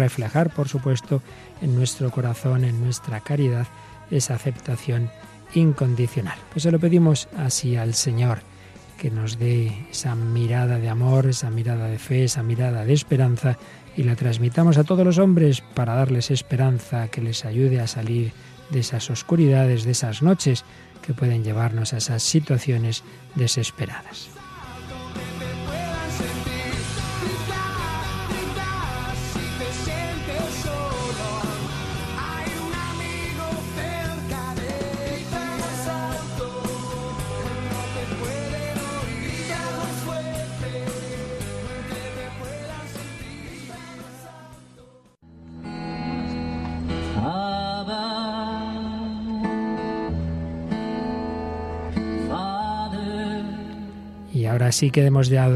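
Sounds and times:
speech: 0:00.0 - 0:24.5, 0:54.8 - 0:55.5
man singing among a group of friends: 0:00.0 - 0:45.2, 0:47.1 - 0:50.1, 0:52.2 - 0:55.5
full instrumental backing: 0:23.9 - 0:44.2, 0:45.3 - 0:54.3.

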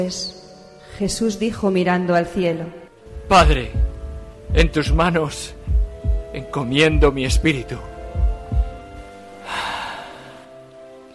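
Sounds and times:
speech: 0:00.0 - 0:00.4, 0:01.0 - 0:03.9, 0:04.5 - 0:05.6, 0:06.3 - 0:07.9
low soft thumps: 0:03.0 - 0:09.1
dying man's last exhaled breath: 0:09.3 - 0:10.5.

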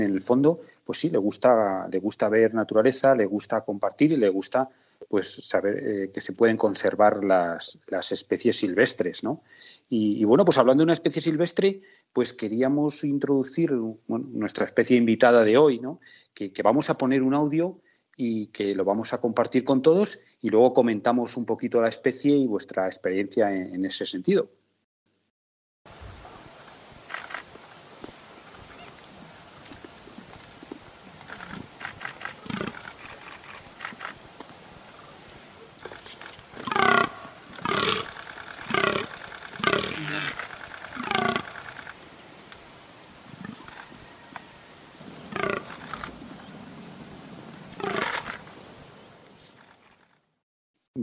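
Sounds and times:
speech: 0:00.0 - 0:24.6
outdoor hiss: 0:00.0 - 0:24.8, 0:25.9 - 0:50.4
deer bellowing deep rasping rutting roars: 0:28.3 - 0:46.6, 0:47.4 - 0:48.7.

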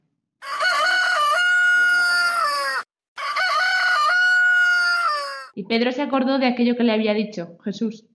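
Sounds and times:
rooster crowing: 0:00.4 - 0:05.6
speech: 0:05.6 - 0:08.1.

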